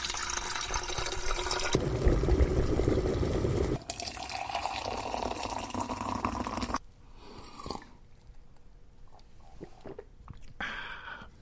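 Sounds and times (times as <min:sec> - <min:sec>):
boiling water pouring from a kettle into a cup: 0:00.0 - 0:06.8.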